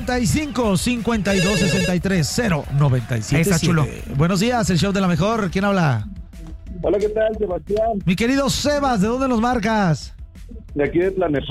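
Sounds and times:
speech: 0:00.1 - 0:06.2, 0:06.8 - 0:10.2, 0:10.8 - 0:11.4
telephone ringing with a warbling electronic ring for a radio phone-in call: 0:01.3 - 0:02.1.

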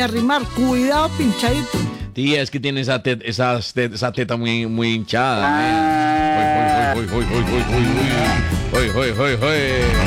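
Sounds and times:
speech: 0:00.0 - 0:10.0
cow lowing: 0:05.4 - 0:08.7.

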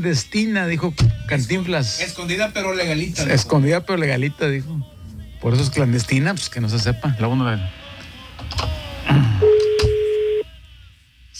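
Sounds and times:
speech: 0:00.0 - 0:07.8, 0:08.5 - 0:09.3
telephone ringing with a steady electronic tone: 0:09.4 - 0:10.4.

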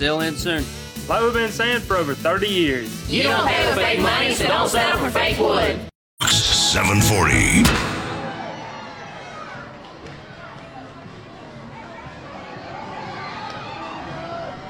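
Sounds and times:
speech: 0:00.0 - 0:05.9, 0:06.7 - 0:07.9
large ballpark crowd murmur: 0:06.2 - 0:14.6.

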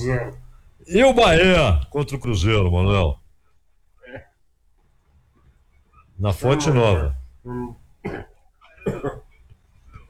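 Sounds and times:
speech: 0:00.0 - 0:03.2, 0:06.2 - 0:09.2
harsh coughs: 0:08.0 - 0:09.4.

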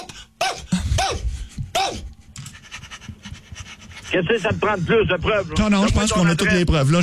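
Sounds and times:
dog barking: 0:00.0 - 0:01.2, 0:01.8 - 0:02.0
faint panting-like noise: 0:00.0 - 0:05.6
speech: 0:04.1 - 0:07.0.

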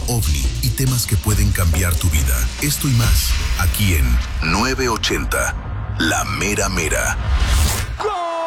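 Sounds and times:
burst of noise: 0:00.2 - 0:08.1
speech: 0:00.8 - 0:08.3.

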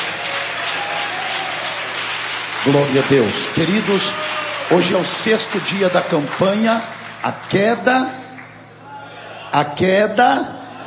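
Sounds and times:
church congregation clapping to welcome a pastor: 0:00.0 - 0:08.7
speech: 0:02.6 - 0:08.2, 0:09.5 - 0:10.6.

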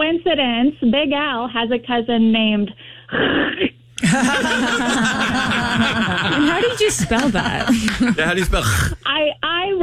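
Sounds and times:
speech: 0:00.2 - 0:09.8
laughter: 0:04.0 - 0:09.0
person imitating hawking a loogie from the throat: 0:08.4 - 0:09.1.

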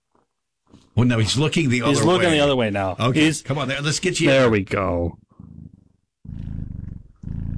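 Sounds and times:
speech: 0:01.0 - 0:05.2
kitten purring: 0:05.3 - 0:07.5.

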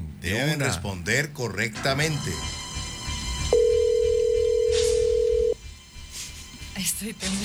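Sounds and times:
speech: 0:00.2 - 0:02.6, 0:06.8 - 0:07.4
telephone being dialed for a prize contest call: 0:03.5 - 0:05.6.

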